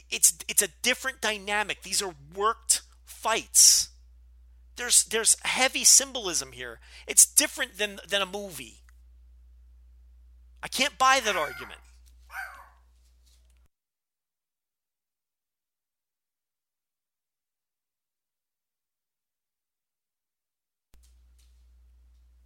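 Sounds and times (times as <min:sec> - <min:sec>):
speech: 0:00.1 - 0:03.9, 0:04.8 - 0:08.8, 0:10.6 - 0:12.5
dog barking: 0:11.3 - 0:12.8.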